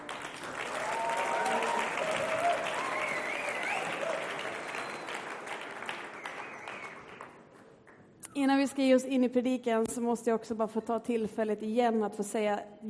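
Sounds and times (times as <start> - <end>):
room full of people applauding a band: 0.0 - 8.0
speech: 8.4 - 12.8.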